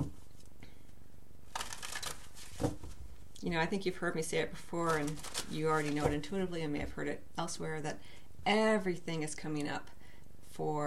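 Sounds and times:
deck of cards rustling while handled: 1.5 - 3.0, 4.8 - 6.2
speech: 3.4 - 10.0, 10.6 - 10.8.

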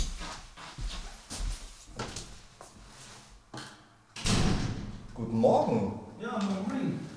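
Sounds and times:
door thud as the door swings open: 4.2 - 5.1
speech: 5.2 - 7.0.

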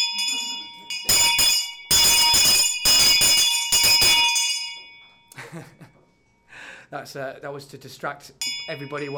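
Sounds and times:
old school bell ringing: 0.0 - 5.9, 8.4 - 9.1
speech: 6.9 - 9.1.

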